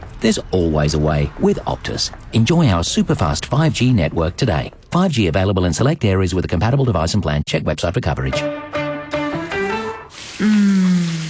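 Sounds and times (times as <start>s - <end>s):
speech: 0.2s - 8.7s
shower water running: 10.1s - 11.2s.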